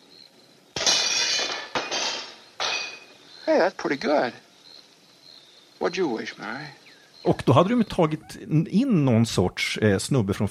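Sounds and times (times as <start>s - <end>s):
falling glass shards tinkling: 0.8s - 3.2s
window glass shattering from rocks thrown through house windows: 0.8s - 3.2s
speech: 3.6s - 4.4s, 5.8s - 10.4s.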